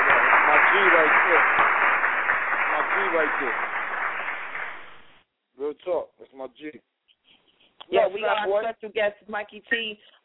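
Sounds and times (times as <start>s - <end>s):
crowd clapping and cheering: 0.0s - 5.2s
speech: 3.2s - 3.8s, 5.9s - 6.9s, 7.9s - 10.2s.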